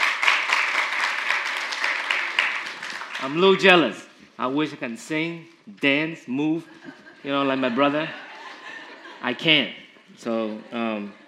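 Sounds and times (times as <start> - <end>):
audience applause for a church worship team: 0.0 - 3.4
speech: 3.2 - 8.2, 9.2 - 11.2
laughter: 6.6 - 11.2.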